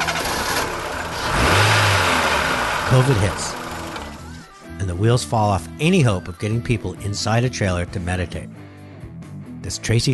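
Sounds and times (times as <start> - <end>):
vehicle engine starting and revving: 0.0 - 4.4
speech: 2.9 - 3.5, 4.9 - 8.6, 9.6 - 10.1.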